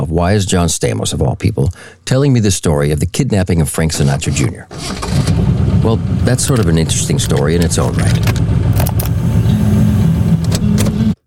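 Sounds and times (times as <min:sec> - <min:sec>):
speech: 0:00.1 - 0:08.4
car engine running: 0:04.7 - 0:11.2
car key turning in ignition with metallic clicks: 0:06.4 - 0:09.1.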